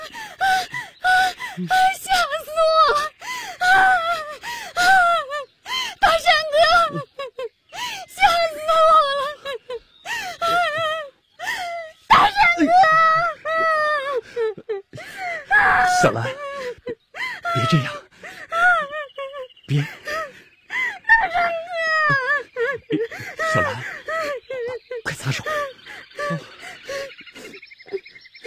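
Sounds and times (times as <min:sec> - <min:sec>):
woman crying and wailing with gasping sobs: 0:00.0 - 0:28.4
speech: 0:01.6 - 0:03.0.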